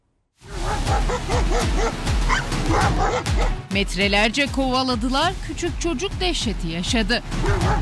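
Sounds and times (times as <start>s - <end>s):
stray street dogs barking: 0.5s - 3.6s, 7.4s - 7.8s
speech: 2.8s - 7.8s.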